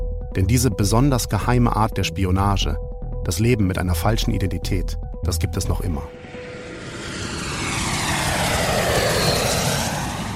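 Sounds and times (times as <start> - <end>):
speech: 0.4 - 6.5
airplane engine droning: 6.1 - 10.3.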